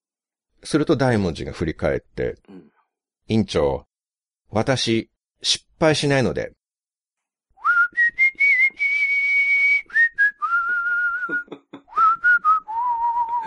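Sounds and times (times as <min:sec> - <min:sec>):
speech: 0:00.6 - 0:02.7, 0:03.3 - 0:03.9, 0:04.5 - 0:06.6
person whistling TV drama background music: 0:07.6 - 0:13.4.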